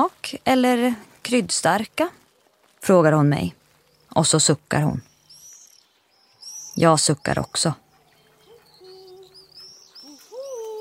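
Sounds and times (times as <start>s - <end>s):
speech: 0.0s - 2.2s, 2.8s - 3.6s, 4.2s - 5.1s, 6.8s - 7.8s
faint high whistling calls: 3.7s - 10.8s
owl-like hooting: 7.9s - 10.8s.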